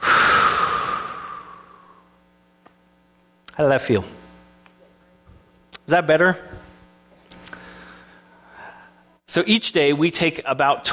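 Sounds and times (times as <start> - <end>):
deep breath during a guided group breathing exercise: 0.0 - 2.1, 7.5 - 9.2
speech: 3.6 - 4.2, 5.9 - 6.6, 9.3 - 10.9.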